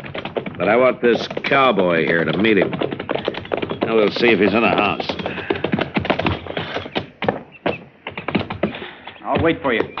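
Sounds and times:
horse hooves clip-clopping on hard ground: 0.0s - 9.9s
speech: 0.6s - 2.8s, 3.9s - 5.2s, 9.4s - 9.9s.

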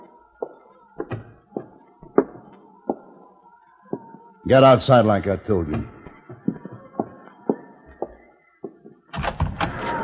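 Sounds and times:
speech: 4.5s - 6.0s
wooden door opening with knocks and clunks: 9.1s - 10.0s.

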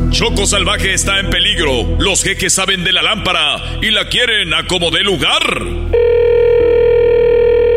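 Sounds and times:
speech: 0.2s - 6.4s
telephone ringing with loud electronic tone: 5.9s - 7.7s.

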